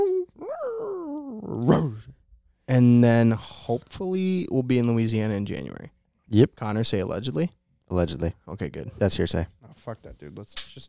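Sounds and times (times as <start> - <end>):
dog moaning howl outside a window: 0.0 - 2.1
speech: 1.6 - 10.8.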